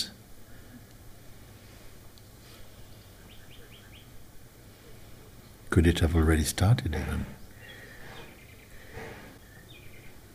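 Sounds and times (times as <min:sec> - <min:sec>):
steady outdoor hiss: 0:00.0 - 0:10.3
bird singing: 0:02.6 - 0:10.3
speech: 0:05.8 - 0:07.4.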